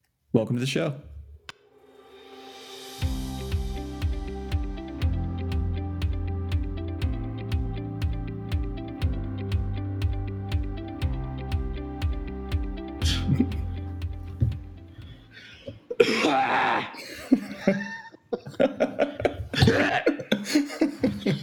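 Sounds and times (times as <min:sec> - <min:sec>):
speech: 0:00.3 - 0:01.1, 0:17.6 - 0:17.9
music: 0:01.9 - 0:15.7
breathy chuckles: 0:15.5 - 0:21.4
person coughing deliberately: 0:15.6 - 0:16.9, 0:19.5 - 0:20.7
throat clearing: 0:19.6 - 0:20.1.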